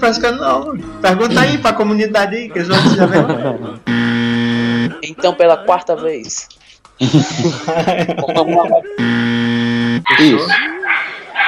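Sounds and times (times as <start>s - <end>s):
people talking excitedly: 0.0s - 3.9s, 4.8s - 9.0s
speech: 0.0s - 4.0s, 5.0s - 9.2s, 10.0s - 10.8s
laughter: 0.2s - 6.2s, 7.0s - 9.1s
electric blender motor running: 3.9s - 5.0s
dog yelping: 10.1s - 11.4s.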